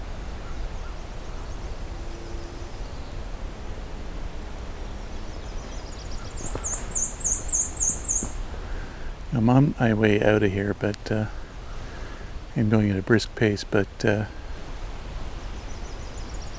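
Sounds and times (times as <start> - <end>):
black-and-white warbler singing: 0.0 - 3.3, 4.7 - 14.5, 15.4 - 16.5
steady outdoor hiss: 0.0 - 16.5
speech: 9.4 - 11.4, 12.6 - 14.4.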